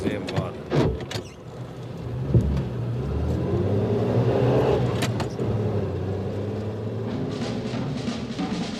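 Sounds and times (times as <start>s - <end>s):
car engine rumbling while driving to a railway station: 0.0s - 8.7s.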